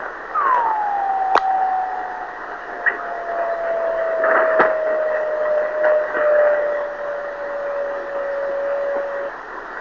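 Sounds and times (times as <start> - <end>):
drift net beacons: 0.3 - 9.6.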